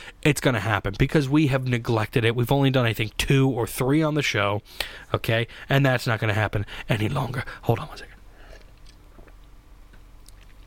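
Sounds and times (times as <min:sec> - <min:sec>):
speech: 0:00.2 - 0:08.1
person sipping a beer: 0:08.3 - 0:09.5
soft wet slurps and mouth clicks: 0:10.2 - 0:10.6.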